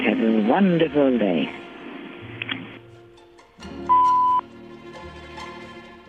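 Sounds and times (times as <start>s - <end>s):
murky music: 0.0s - 6.0s
speech: 0.5s - 1.6s
answering machine electronic beep: 3.9s - 4.4s.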